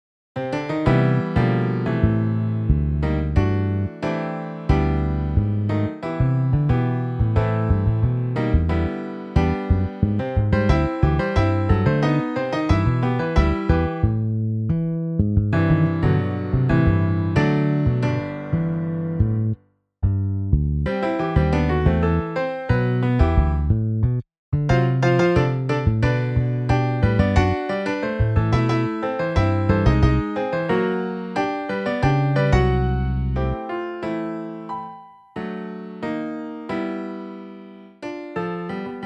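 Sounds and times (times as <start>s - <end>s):
piano bass MIDI: 0.4s - 39.0s.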